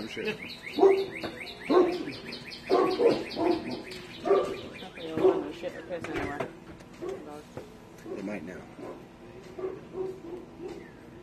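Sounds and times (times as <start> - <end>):
speech: 0.0 - 2.2, 5.7 - 10.9
birds chirping: 0.0 - 6.4, 9.6 - 11.2
female dog barking: 0.7 - 5.6, 8.0 - 10.9.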